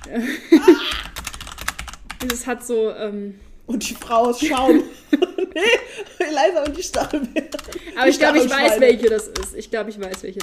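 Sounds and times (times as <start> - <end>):
speech: 0.0 - 1.1, 2.2 - 10.4
person vocal exclamation or laugh: 0.0 - 1.2
loud computer keyboard typing while searching online: 0.0 - 2.5, 3.9 - 4.8, 6.6 - 10.4.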